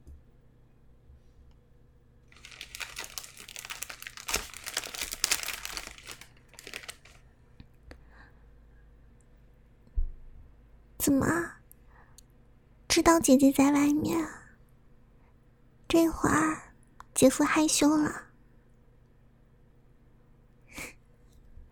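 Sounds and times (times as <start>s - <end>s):
package wrapping crinkling, crackling and tearing while being unwrapped: 2.3s - 7.2s
speech: 11.1s - 11.5s, 13.0s - 14.4s, 16.0s - 16.6s, 17.2s - 18.2s.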